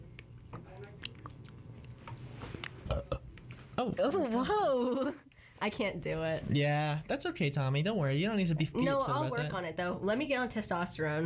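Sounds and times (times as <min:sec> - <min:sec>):
soft mouth and chewing-like noises: 0:00.0 - 0:03.7
gravelly burp into the microphone: 0:02.8 - 0:03.3
speech: 0:03.8 - 0:11.2.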